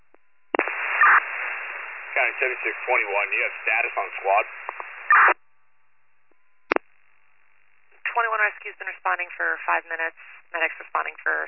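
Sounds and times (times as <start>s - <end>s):
radio channel hissing static: 0.6s - 5.4s, 8.0s - 11.4s
speech: 2.4s - 5.4s, 8.6s - 11.4s
brief faint click: 4.6s - 4.9s.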